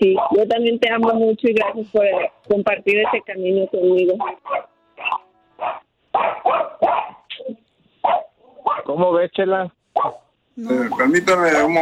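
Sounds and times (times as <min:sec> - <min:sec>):
dog barking: 0:00.0 - 0:00.5, 0:01.6 - 0:03.4, 0:04.2 - 0:07.3, 0:08.0 - 0:09.0, 0:09.9 - 0:10.3
speech: 0:00.0 - 0:04.7, 0:08.8 - 0:11.7.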